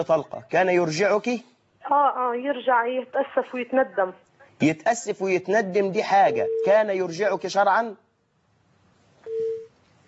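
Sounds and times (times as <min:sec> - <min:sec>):
speech: 0:00.0 - 0:08.0
faint hiss: 0:00.0 - 0:10.0
phone line tone as a caller's connection drops: 0:06.3 - 0:06.8, 0:09.2 - 0:09.7.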